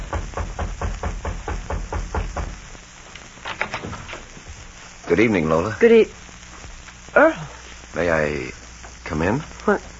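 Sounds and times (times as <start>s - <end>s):
man knocking on the wooden door of a little house: 0.0s - 2.6s
faint hiss: 0.0s - 9.9s
speech: 5.1s - 6.2s, 8.2s - 9.9s.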